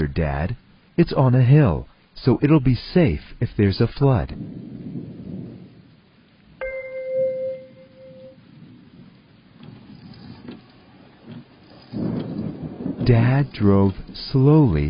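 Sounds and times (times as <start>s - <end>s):
speech: 0.0s - 4.8s, 13.1s - 14.8s
heavy rain pouring: 0.3s - 14.8s
bright chime: 6.6s - 8.4s.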